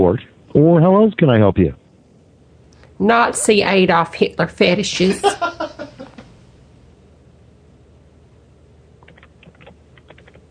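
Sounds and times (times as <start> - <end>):
speech: 0.0 - 1.8, 3.0 - 6.2
steady noise: 0.0 - 10.4
laughter: 4.9 - 6.4
typing on a computer keyboard during a phone call to tech support: 9.0 - 10.4.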